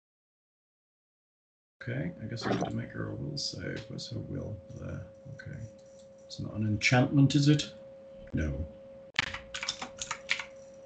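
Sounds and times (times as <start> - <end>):
speech: 1.8 - 8.8
faint steady hum: 1.8 - 10.8
typing on a computer keyboard: 9.2 - 10.8.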